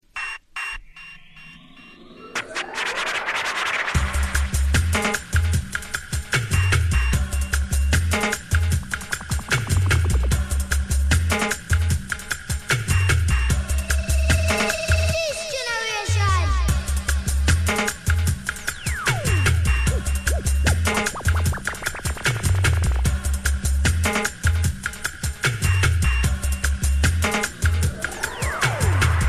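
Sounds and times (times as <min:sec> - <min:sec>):
hardcore music played from vinyl: 0:00.6 - 0:29.2.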